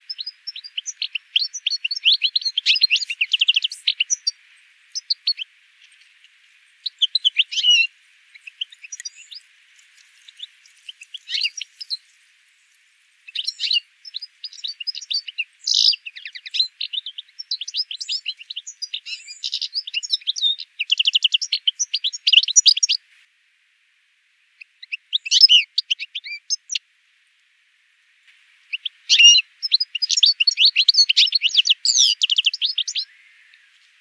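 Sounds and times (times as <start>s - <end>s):
Carduelis carduelis: 0.0s - 23.0s, 24.6s - 26.8s, 28.7s - 33.9s.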